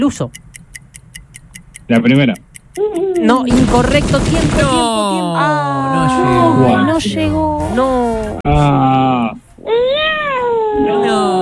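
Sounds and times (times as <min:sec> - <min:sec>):
speech: 0:00.0 - 0:00.4, 0:01.9 - 0:10.1
large cat meowing: 0:09.6 - 0:11.3.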